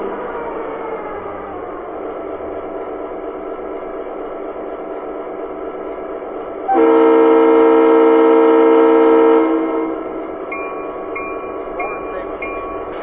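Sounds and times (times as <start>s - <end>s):
MP15DC locomotive three-chime horn: 6.7s - 10.3s.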